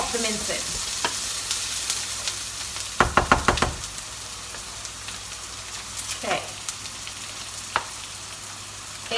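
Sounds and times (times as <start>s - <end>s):
garlic and onions sizzling in a frying pan: 0.0s - 9.1s
speech: 0.1s - 0.9s
sharp knocks from stirring: 3.0s - 4.0s.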